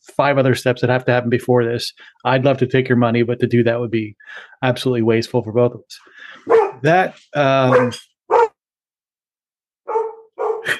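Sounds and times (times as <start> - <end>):
speech: 0.2 - 8.4
dog barking: 6.4 - 6.8, 7.6 - 8.6, 9.9 - 10.7.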